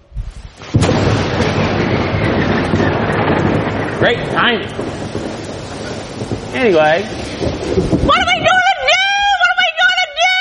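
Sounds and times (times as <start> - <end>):
thunder rumbling: 0.1 - 10.4
thunder crack: 0.6 - 9.6
speech: 4.0 - 5.1, 6.6 - 8.2.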